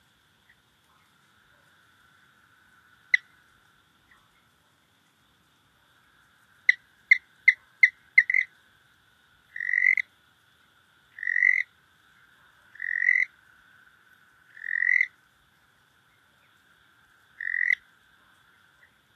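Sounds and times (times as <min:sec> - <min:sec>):
cliff chirping frog calling in North America: 0:01.5 - 0:04.2, 0:06.5 - 0:08.6, 0:09.4 - 0:10.2, 0:11.0 - 0:15.2, 0:16.1 - 0:19.0.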